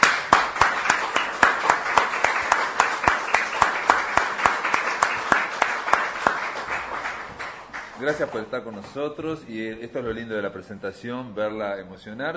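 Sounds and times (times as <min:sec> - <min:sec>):
audience at a poetry presentation applauding: 0:00.0 - 0:08.5
sharp evenly spaced claps: 0:00.0 - 0:08.5
speech: 0:08.0 - 0:12.3.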